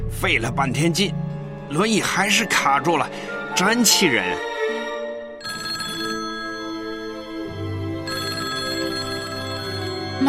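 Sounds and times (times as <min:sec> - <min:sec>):
speech: 0:00.2 - 0:04.5
telephone ringing with a bright tonal electronic ringtone: 0:05.4 - 0:10.2.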